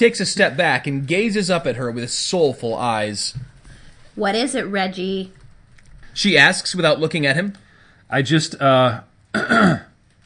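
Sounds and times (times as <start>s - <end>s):
speech: 0.0s - 3.5s, 4.2s - 5.4s, 6.2s - 9.9s
man clearing throat: 9.4s - 10.0s.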